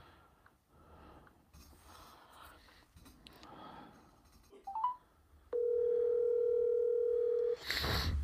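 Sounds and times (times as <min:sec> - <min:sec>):
telephone dial tone while placing a call: 0:05.6 - 0:07.6.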